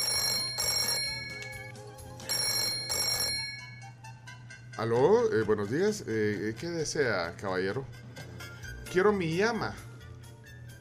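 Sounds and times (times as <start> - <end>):
old-style telephone bell ringing: 0.0 - 4.0
speech: 4.8 - 8.0, 8.9 - 9.9.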